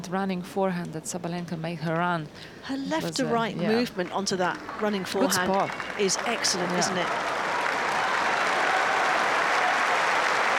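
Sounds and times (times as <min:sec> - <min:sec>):
speech: 0:00.0 - 0:07.4
large tennis crowd applauding: 0:04.0 - 0:10.5.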